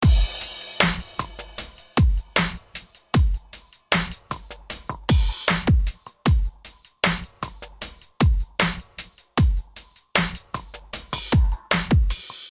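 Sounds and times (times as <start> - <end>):
drum groove through a compressor: 0.0 - 12.4.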